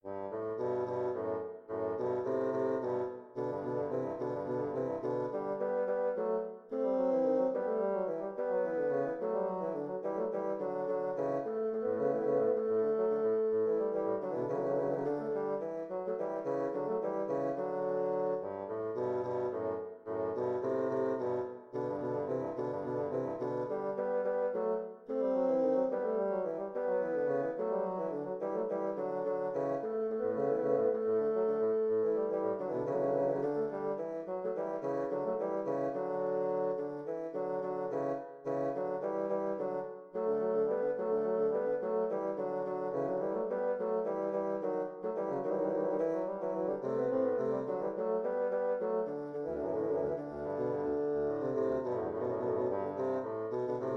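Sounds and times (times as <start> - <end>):
duet of two bassoons: 0.0 - 53.9.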